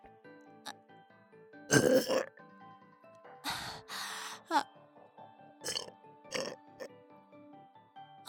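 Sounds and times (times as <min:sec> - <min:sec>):
gurgling burps: 0:01.7 - 0:02.4, 0:05.6 - 0:06.9.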